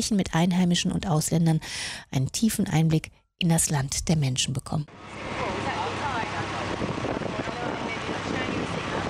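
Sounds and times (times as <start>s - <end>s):
speech: 0.0s - 5.5s
motorboat engine drone riding across the bay: 4.9s - 9.0s
rushing wind: 5.0s - 9.0s
splashing waves: 5.0s - 9.0s.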